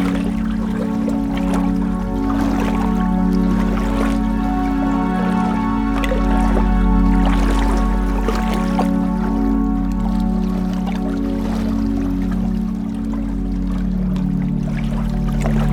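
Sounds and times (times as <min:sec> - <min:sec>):
constant low droning hum like an engine idling: 0:00.0 - 0:15.7
water lapping and trickling along a lake shore: 0:00.0 - 0:15.7.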